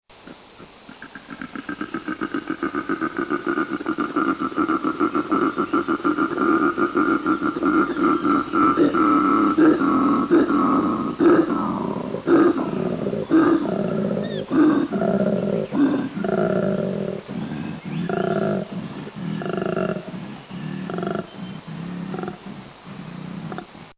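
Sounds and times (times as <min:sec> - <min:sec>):
koala calling: 0:00.3 - 0:23.8.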